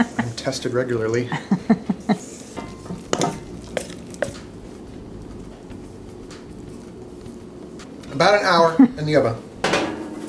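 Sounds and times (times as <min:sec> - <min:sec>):
laughter: 0:00.0 - 0:00.4, 0:01.2 - 0:02.4
speech: 0:00.0 - 0:02.3, 0:08.2 - 0:09.4
utensil stirring batter of milk, whole wheat flour and coconut: 0:02.6 - 0:07.0.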